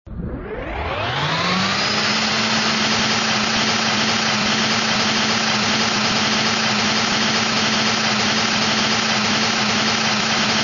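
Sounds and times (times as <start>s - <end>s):
machine powering up and down: 0.0s - 10.6s.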